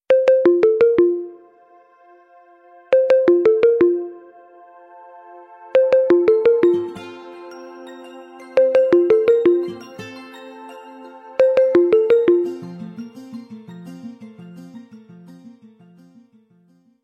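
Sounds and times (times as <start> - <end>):
phone ringtone: 0.1 - 1.6, 2.9 - 4.3, 5.7 - 13.2.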